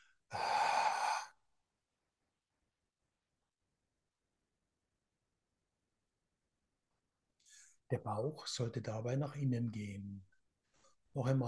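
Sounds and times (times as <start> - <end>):
breath exhaled through the open mouth during a breathing exercise: 0.0 - 1.3
speech: 7.9 - 10.3, 11.2 - 11.4.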